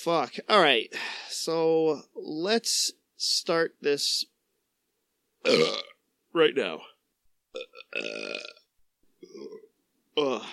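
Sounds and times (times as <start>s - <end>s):
speech: 0.0s - 4.3s, 5.4s - 6.9s, 7.6s - 8.6s, 10.2s - 10.5s
person belching: 5.4s - 6.0s, 7.6s - 10.5s.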